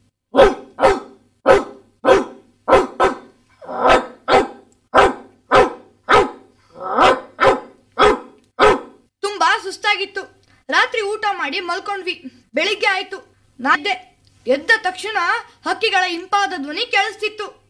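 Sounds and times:
Doberman barking: 0.3 - 9.0
speech: 11.2 - 17.6.

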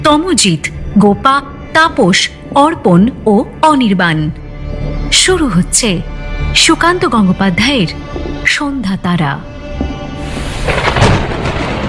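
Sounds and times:
speech: 0.1 - 9.6
thunder cracking during a lightning storm: 10.1 - 11.8.

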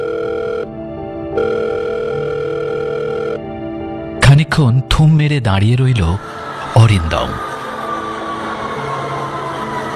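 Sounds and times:
unanswered telephone ringing with steady electronic ringing tone: 0.0 - 0.8, 1.4 - 3.6
speech: 4.4 - 7.5.

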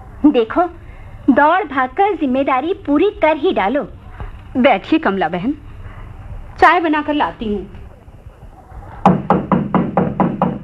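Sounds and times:
speech: 0.2 - 5.6, 6.6 - 7.8
loud insistent knocking on a house door by a visitor: 9.0 - 10.6.

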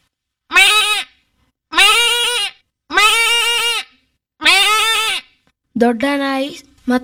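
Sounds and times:
human voice imitating a goat bleating in a mimicry act: 0.5 - 1.1, 1.7 - 5.3
speech: 5.8 - 7.0.

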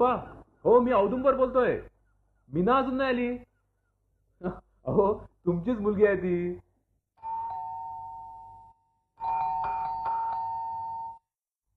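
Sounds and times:
speech: 0.0 - 1.9, 2.5 - 3.5, 4.4 - 6.6
doorbell ringing: 7.2 - 11.3.

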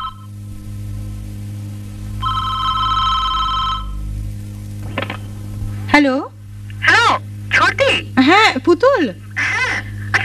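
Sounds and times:
telephone ringing: 0.0 - 0.3, 2.2 - 4.0
steady low hum: 0.0 - 10.2
speech: 6.0 - 6.3.

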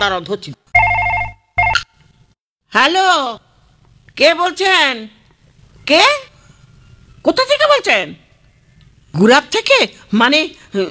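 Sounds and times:
speech: 0.0 - 0.8, 2.7 - 3.4, 4.2 - 5.2, 5.9 - 6.3, 7.2 - 8.2, 9.2 - 10.8
landline telephone ringing at home in electronic trills: 0.8 - 2.0.

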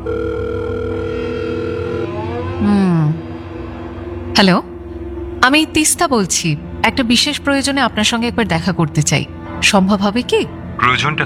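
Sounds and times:
telephone ringing tone during a phone call: 0.0 - 2.6
speech: 4.4 - 4.7, 5.4 - 11.2.

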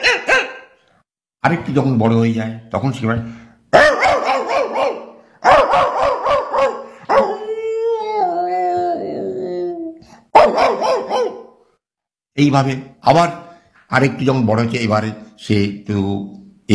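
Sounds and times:
dog barking on seeing another dog: 0.0 - 0.8, 3.7 - 7.5, 10.3 - 11.6
speech: 1.4 - 3.8, 12.4 - 16.7
dog's long wavering howl-like whine: 7.1 - 11.4.

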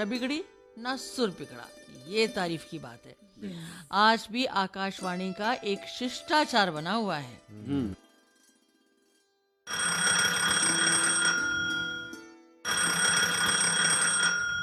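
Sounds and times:
speech: 0.0 - 8.0
telephone bell ringing: 9.7 - 14.6.

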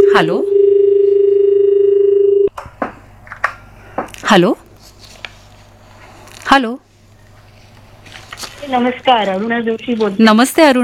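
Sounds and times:
telephone line tone as a radio call-in caller connects: 0.0 - 2.5
speech: 0.1 - 0.6, 4.3 - 4.6, 6.5 - 6.8, 8.6 - 10.8.

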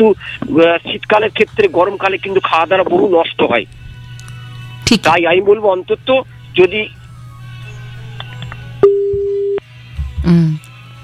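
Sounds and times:
speech: 0.0 - 3.8, 4.9 - 7.0
telephone busy signal after the call disconnected: 8.8 - 9.6.

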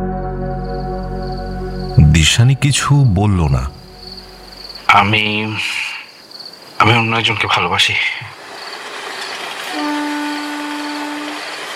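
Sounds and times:
speech: 2.2 - 3.8, 4.9 - 5.9, 6.8 - 8.3
distant train whistle: 9.7 - 11.7.

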